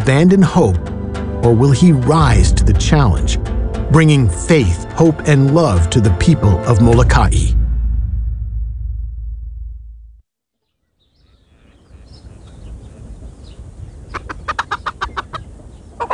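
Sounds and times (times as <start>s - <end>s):
speech: 0.0s - 7.6s
low rumble: 0.7s - 10.2s
bustling farmyard background: 11.2s - 16.1s
chickens clucking: 11.6s - 16.1s.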